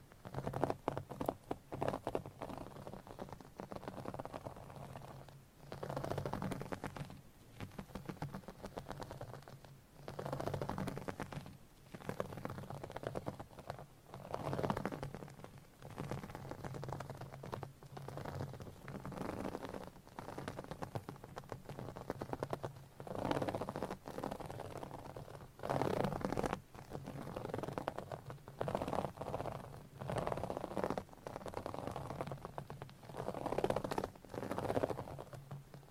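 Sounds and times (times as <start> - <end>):
scratching and tapping on a mic: 0.0 - 35.9.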